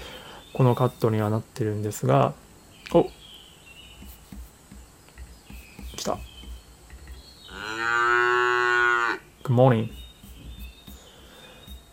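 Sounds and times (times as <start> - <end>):
speech: 0.6 - 3.2, 6.0 - 6.3, 9.5 - 10.0
cow mooing: 7.5 - 9.2.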